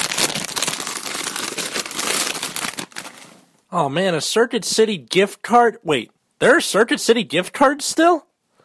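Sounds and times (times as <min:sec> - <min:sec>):
gift wrapping paper crinkling, rustling and tearing: 0:00.0 - 0:03.6
speech: 0:03.7 - 0:08.3.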